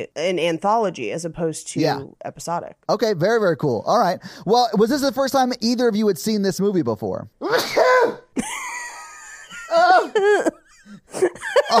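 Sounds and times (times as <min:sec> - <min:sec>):
speech: 0:00.0 - 0:08.7, 0:09.7 - 0:11.7
very loud sneeze: 0:07.4 - 0:08.4
laughter: 0:08.4 - 0:11.7.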